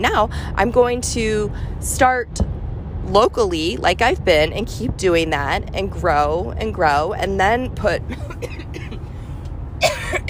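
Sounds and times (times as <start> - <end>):
speech: 0.0 - 2.5, 3.1 - 8.6
steady low rumble: 0.0 - 10.2
person coughing: 8.1 - 9.1, 9.8 - 10.2.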